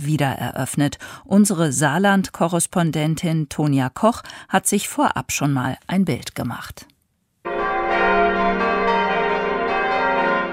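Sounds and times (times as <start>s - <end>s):
speech: 0.0s - 6.9s
church bells of the abbey church in Tholey Saarland Germany ringing: 7.5s - 10.5s.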